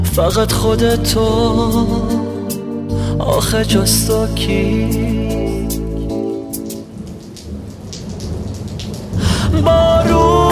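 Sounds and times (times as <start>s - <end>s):
speech: 0.2s - 2.3s, 3.2s - 5.3s
gentle rain falling: 5.4s - 10.4s.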